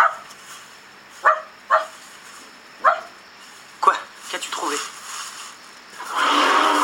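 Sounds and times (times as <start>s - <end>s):
dog barking: 0.0s - 0.3s, 1.2s - 2.0s, 2.8s - 3.2s
elephant snorting air through the trunk: 6.0s - 6.8s.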